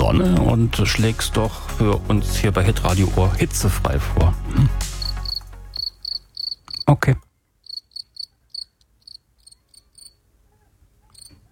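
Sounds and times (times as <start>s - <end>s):
speech: 0.1s - 4.8s
cricket chirping: 5.0s - 6.9s, 7.6s - 10.2s.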